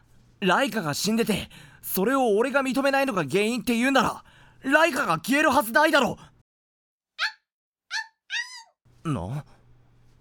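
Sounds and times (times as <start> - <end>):
speech: 0.4 - 6.3, 9.0 - 9.5
dog whining: 7.2 - 8.8.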